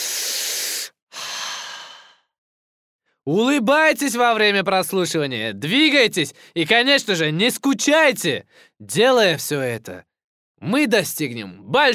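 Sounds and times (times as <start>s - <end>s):
deep breath in and out: 0.0s - 2.4s, 8.5s - 8.8s
speech: 3.3s - 11.9s.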